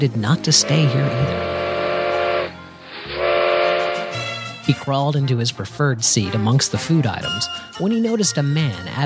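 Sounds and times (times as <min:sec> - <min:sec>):
speech: 0:00.0 - 0:01.7, 0:04.7 - 0:09.0
steam train whistle: 0:00.4 - 0:04.4
steady hiss of steam: 0:00.6 - 0:03.6.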